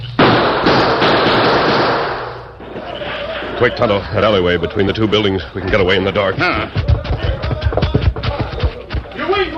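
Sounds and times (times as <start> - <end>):
gunshots fired to cover a retreat: 0.2 - 2.8
laughter: 2.6 - 9.4
speech: 3.6 - 6.9.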